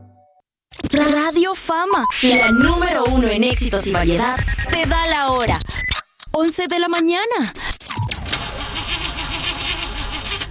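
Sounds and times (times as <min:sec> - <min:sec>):
speech: 0:01.0 - 0:07.8
car engine cranking without catching in a car out of oil: 0:08.1 - 0:10.5.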